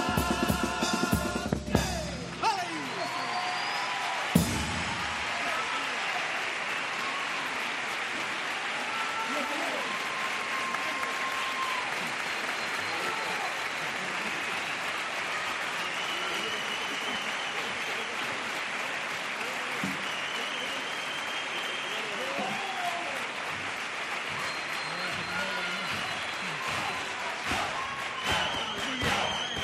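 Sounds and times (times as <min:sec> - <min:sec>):
crowd cheering and shouting olé: 0:00.1 - 0:13.7, 0:21.7 - 0:23.4, 0:24.2 - 0:29.6
large crowd applauding: 0:01.7 - 0:29.6.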